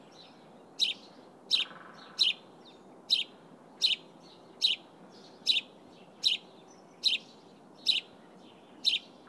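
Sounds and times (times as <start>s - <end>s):
soft constant noise floor: 0.0s - 9.2s
house sparrow chirping, Passer domesticus: 0.8s - 2.4s, 5.4s - 6.4s, 7.0s - 8.1s.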